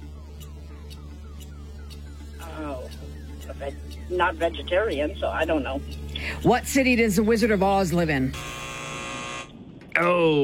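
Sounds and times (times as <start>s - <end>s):
quiz buzzer: 0.0s - 4.3s, 8.3s - 9.6s
speech: 2.8s - 8.6s, 10.0s - 10.4s.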